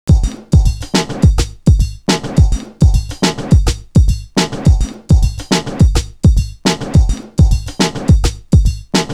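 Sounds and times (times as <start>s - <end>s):
ragga breakbeat loop: 0.1s - 9.1s.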